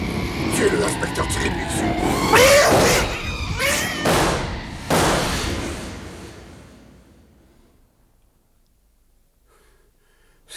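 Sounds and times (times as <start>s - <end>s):
lingering rumble: 0.0s - 8.1s
speech: 0.6s - 2.4s
cat yowling and screeching wildly: 2.1s - 4.9s
loud crashing thumps: 2.1s - 7.9s.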